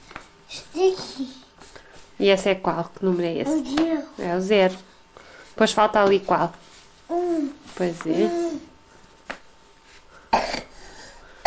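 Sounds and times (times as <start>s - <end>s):
speech: 0.8s - 1.4s, 2.2s - 4.9s, 5.6s - 8.7s
person coughing: 10.3s - 10.8s.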